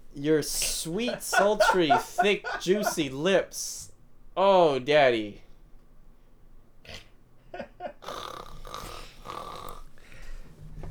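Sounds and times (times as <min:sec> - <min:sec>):
speech: 0:00.2 - 0:05.4
laughter: 0:00.6 - 0:03.2, 0:07.5 - 0:08.0
person fake snoring with snorting bursts: 0:08.0 - 0:09.9.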